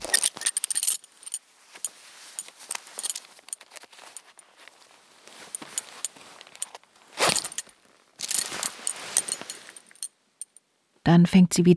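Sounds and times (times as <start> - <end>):
bunch of keys jangling and clinking: 0.0 - 1.4, 2.3 - 4.8, 5.4 - 10.6
speech: 11.2 - 11.7.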